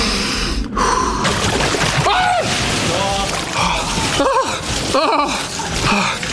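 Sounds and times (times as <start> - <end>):
person gasping and breathing shakily in an ice tub: 0.0 - 1.4, 3.5 - 6.3
water sloshing in an ice tub: 1.2 - 6.3.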